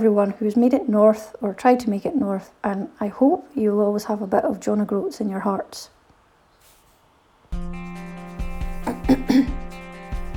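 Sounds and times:
speech: 0.0 - 6.0, 9.1 - 9.6
person clearing throat into a microphone: 8.8 - 9.8.

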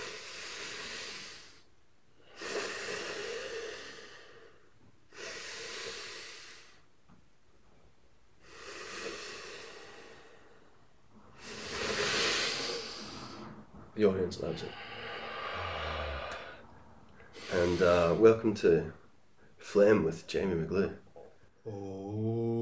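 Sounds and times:
deep diaphragmatic breathing through the nostrils with a blocked nose: 0.0 - 6.9, 8.4 - 13.8, 14.4 - 18.4
speech: 14.0 - 14.9, 17.5 - 19.0, 19.7 - 21.0, 21.6 - 22.5.

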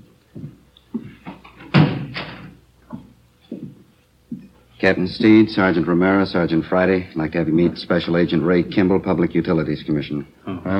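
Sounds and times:
soft footsteps on a hard floor: 0.0 - 4.6
office door closing with a solid thud: 1.6 - 2.6
speech: 4.8 - 10.7.

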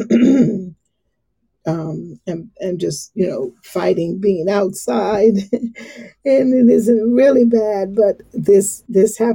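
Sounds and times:
man clearing phlegm from his throat: 0.0 - 0.7
speech: 0.2 - 0.6, 1.6 - 9.3.

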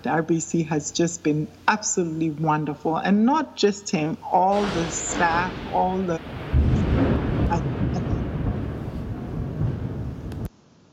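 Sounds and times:
speech: 0.0 - 6.8
loud deep thunder rumbling during a storm: 4.3 - 10.5.

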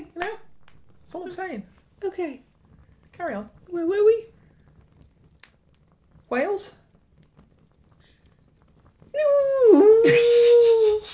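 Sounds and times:
speech: 1.1 - 2.5, 3.2 - 4.4, 6.3 - 6.8, 9.2 - 11.1
vocal moan imitating a whale call: 9.2 - 11.0.

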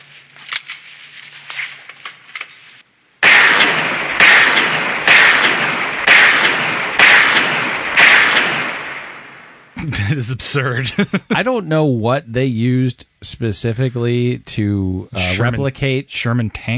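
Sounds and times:
.44 revolver gunshots in a film scene: 3.2 - 9.7
laughter: 9.8 - 11.7, 15.2 - 15.4
speech: 10.1 - 16.7.

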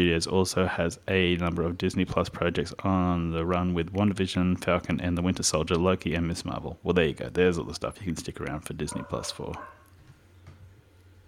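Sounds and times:
speech: 0.0 - 9.8
low steady hum: 0.0 - 11.2
dog barking faintly: 8.8 - 9.9.

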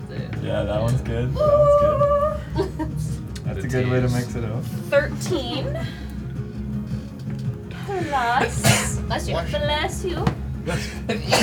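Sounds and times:
speech: 0.4 - 2.1, 3.0 - 6.0, 8.0 - 11.4
laughter: 2.4 - 3.2, 10.7 - 11.4
sharp sneeze: 8.6 - 9.0, 11.1 - 11.4.

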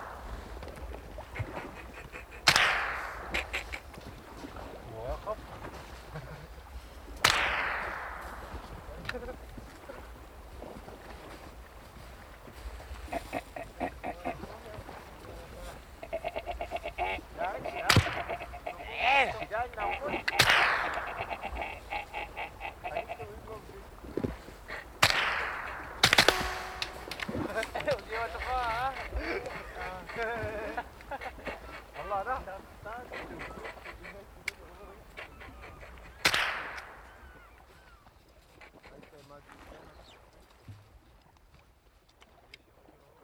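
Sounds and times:
faint bird calls: 0.0 - 11.0, 12.6 - 40.4
laughter: 1.1 - 2.6, 4.9 - 6.8, 8.8 - 10.1, 12.9 - 23.9, 26.3 - 36.2
small-calibre rifle shots: 2.4 - 3.4, 7.2 - 8.9, 20.4 - 21.2, 25.0 - 27.8, 36.2 - 37.0.

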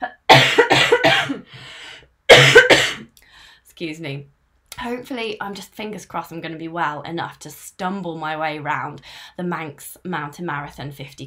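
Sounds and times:
person coughing behind a hand: 0.0 - 1.5, 2.3 - 3.1
wheezy breath: 1.5 - 2.1
speech: 3.8 - 11.2.

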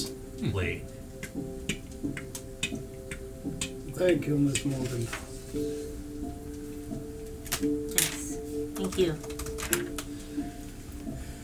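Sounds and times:
clock ticking in a parlor: 0.0 - 5.1, 6.5 - 10.1
speech: 0.4 - 2.3, 4.0 - 5.9, 8.8 - 10.0.

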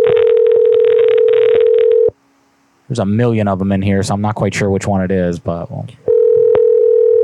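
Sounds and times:
crackly hissing static on a bad phone line: 0.0 - 2.2, 6.0 - 7.2
steady loud telephone tone on a phone line: 0.0 - 2.2, 6.1 - 7.2
speech: 2.9 - 6.0.

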